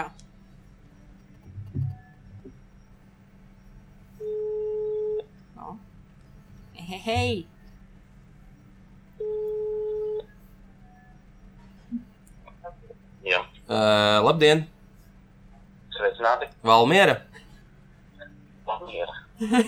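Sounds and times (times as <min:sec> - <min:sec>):
faint noise: 0:00.0 - 0:19.6
outgoing phone call ringback tones from Liepāja to Valmiera: 0:04.2 - 0:05.2, 0:09.2 - 0:10.3
speech: 0:06.9 - 0:07.6, 0:13.7 - 0:14.7, 0:16.2 - 0:17.3, 0:19.4 - 0:19.6
person chuckling: 0:19.4 - 0:19.6.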